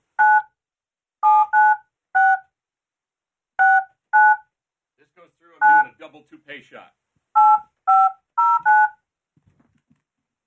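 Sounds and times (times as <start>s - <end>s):
touch-tone telephone keypad dialing beeps: 0.2s - 0.6s, 1.2s - 2.5s, 3.6s - 4.5s, 5.6s - 5.9s, 7.4s - 9.0s
speech: 5.2s - 7.0s.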